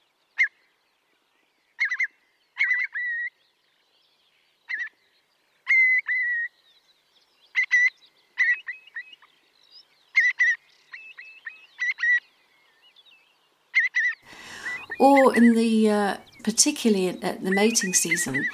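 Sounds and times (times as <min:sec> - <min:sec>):
Eurasian curlew giving short sharp calls across a wetland: 0:01.8 - 0:03.4, 0:05.6 - 0:06.6, 0:07.5 - 0:09.3, 0:10.1 - 0:12.3, 0:13.7 - 0:18.5
speech: 0:15.0 - 0:18.5.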